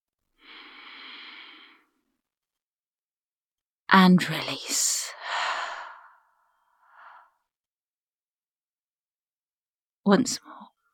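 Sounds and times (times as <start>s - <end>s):
deep slow inhalation: 0.4s - 1.9s, 5.2s - 6.2s
speech: 3.9s - 4.8s, 10.1s - 10.7s.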